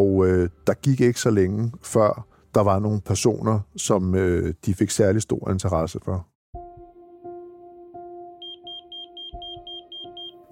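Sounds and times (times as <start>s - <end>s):
speech: 0.2s - 6.3s
pager beeping: 8.4s - 10.5s.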